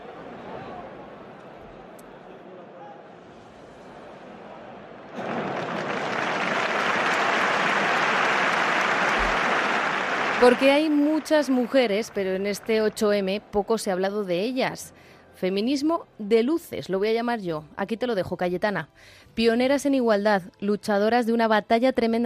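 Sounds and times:
crowd applauding in an ovation: 0:05.1 - 0:13.4
speech: 0:10.4 - 0:22.2.

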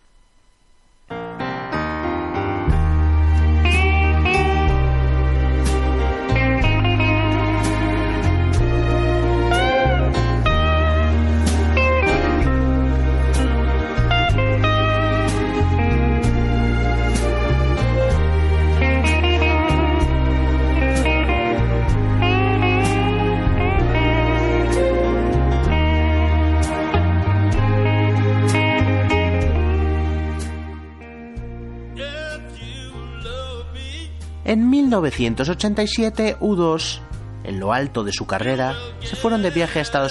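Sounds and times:
deep bass: 0:01.0 - 0:40.0
layered melodic parts of a full band: 0:01.3 - 0:32.6
blues duet singing: 0:32.0 - 0:34.3, 0:38.4 - 0:40.0
speech: 0:35.0 - 0:40.0.

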